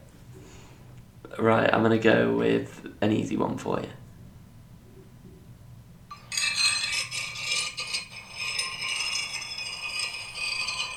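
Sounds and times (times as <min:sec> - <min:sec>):
speech: 0:01.3 - 0:04.0
fork scraping against a plate: 0:06.1 - 0:10.9.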